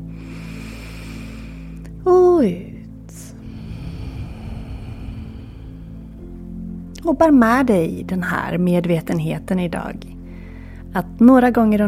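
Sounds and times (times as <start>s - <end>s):
slow deep breath in through the nose during breathing meditation: 0.1s - 1.9s, 3.4s - 6.3s
speech: 2.0s - 2.7s, 7.1s - 10.1s, 10.9s - 11.8s.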